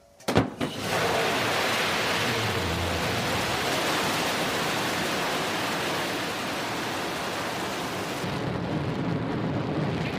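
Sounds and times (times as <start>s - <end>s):
rocket engine roaring at liftoff of a crewed spaceflight: 0.6s - 10.1s.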